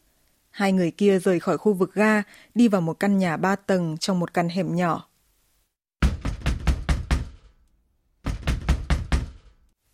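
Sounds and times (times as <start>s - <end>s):
speech: 0.6s - 5.1s
pounding on the door of a three-storey house: 6.0s - 7.6s, 8.2s - 9.6s.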